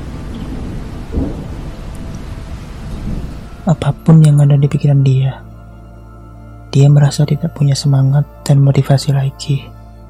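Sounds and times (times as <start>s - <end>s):
low rumble of thunder: 0.0s - 5.4s
steady rain pouring down: 0.0s - 5.4s
speech: 3.7s - 5.4s, 6.8s - 9.8s.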